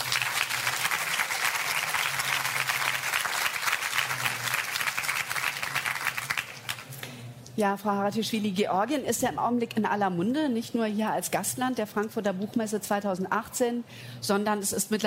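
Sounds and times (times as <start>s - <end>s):
audience applause: 0.0s - 6.9s
speech: 7.6s - 15.0s.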